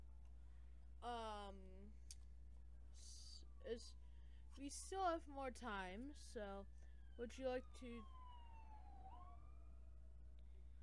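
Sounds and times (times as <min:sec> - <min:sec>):
speech: 0:01.0 - 0:02.0, 0:03.0 - 0:04.0, 0:04.6 - 0:08.2
police siren passing: 0:03.2 - 0:04.1, 0:06.2 - 0:10.8.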